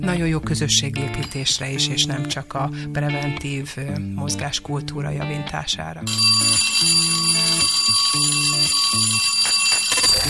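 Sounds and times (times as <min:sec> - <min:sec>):
speech: 0:00.0 - 0:09.5
electronic ringing bell signal announcing a listener's message: 0:06.1 - 0:10.2.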